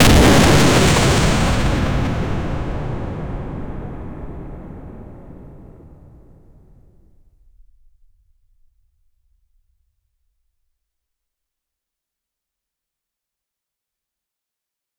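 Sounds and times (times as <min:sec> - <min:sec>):
powerful catastrophic explosion: 0:00.0 - 0:06.9.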